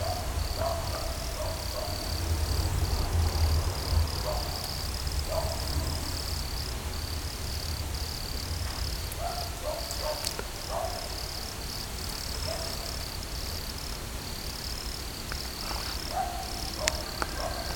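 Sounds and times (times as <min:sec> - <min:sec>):
Nemobius sylvestris chirping in Podgorzyce: 0:00.0 - 0:17.7.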